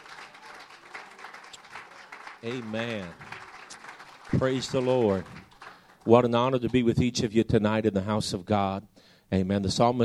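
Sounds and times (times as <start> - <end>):
church congregation clapping: 0.0 - 7.2
speech: 2.4 - 3.3, 4.3 - 5.4, 6.0 - 10.0.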